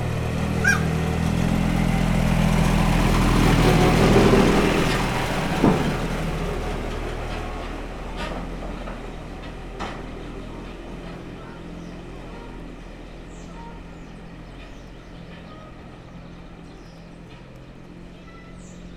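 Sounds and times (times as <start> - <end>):
small tractor with trailer passing: 0.0 - 18.9
peacock in Debrecen zoo: 0.3 - 1.6.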